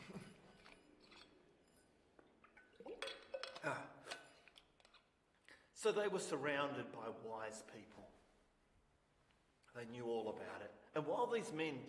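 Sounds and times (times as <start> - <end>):
glass clinking: 0.1 - 4.7
water pouring into a glass: 2.2 - 5.0
speech: 3.6 - 4.0, 5.8 - 8.2, 9.8 - 11.8.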